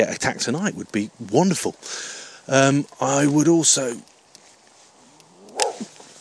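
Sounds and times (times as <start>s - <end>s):
speech: 0.0s - 4.1s
angry dog growling outdoors in the dark: 5.3s - 5.9s.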